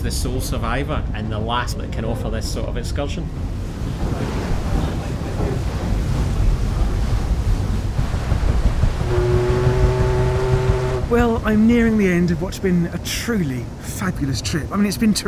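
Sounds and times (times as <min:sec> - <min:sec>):
speech: 0:00.0 - 0:04.6, 0:11.1 - 0:15.2
waves surging around an ocean-going paddle steamer heading into the pier at Largs: 0:03.4 - 0:15.2
low paddle steamer engine rumble: 0:04.8 - 0:11.9
wind rushing on the deck of an ocean-going paddle steamer at sea: 0:05.8 - 0:11.5
sustained tonal hum or whistle: 0:09.0 - 0:11.1.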